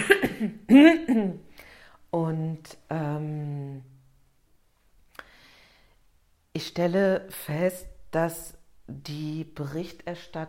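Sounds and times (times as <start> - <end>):
person coughing in rough voiced bursts: 0.0 - 1.4
speech: 0.4 - 1.5, 2.1 - 3.9, 6.6 - 10.4.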